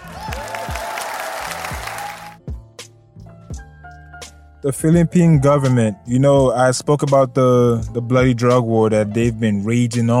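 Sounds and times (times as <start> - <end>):
crowd clapping: 0.0 - 2.4
speech: 4.6 - 10.1.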